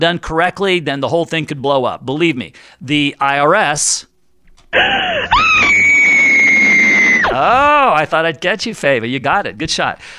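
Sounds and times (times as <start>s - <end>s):
speech: 0.0s - 4.1s, 4.7s - 5.9s, 7.4s - 10.1s
woman screaming and shrieking: 4.8s - 7.5s.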